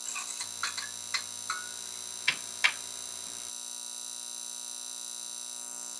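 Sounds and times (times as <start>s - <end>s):
fluorescent light buzz: 0.0s - 5.9s.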